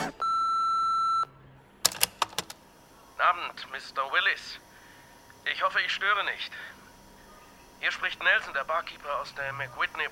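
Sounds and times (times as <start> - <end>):
answering machine beep: 0.2 - 1.3
speech: 3.4 - 4.6, 5.4 - 6.8, 7.8 - 10.0.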